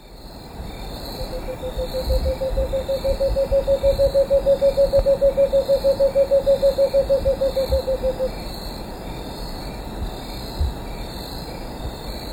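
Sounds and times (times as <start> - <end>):
insects buzzing in Ecuador: 0.0 - 12.3
cinnamon screech owl hooting in Ecuador: 1.2 - 8.3.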